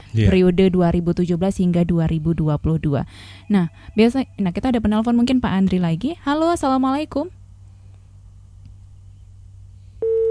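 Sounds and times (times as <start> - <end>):
low hum: 0.0 - 10.2
speech: 0.1 - 7.4
telephone busy tone after a dropped radio phone-in call: 10.0 - 10.2.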